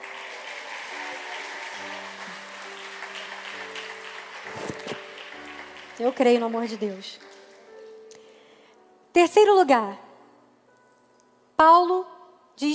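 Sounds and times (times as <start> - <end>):
large crowd applauding: 0.0 - 7.9
speech: 6.0 - 7.3, 9.2 - 10.0, 11.6 - 12.7.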